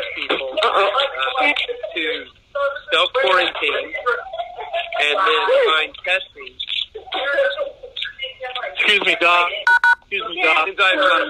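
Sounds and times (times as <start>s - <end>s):
voices on a call line: 0.0s - 11.2s
speech: 0.2s - 4.3s, 5.0s - 7.7s, 8.8s - 9.6s, 10.4s - 11.2s
telephone keypad beeps: 9.7s - 10.0s.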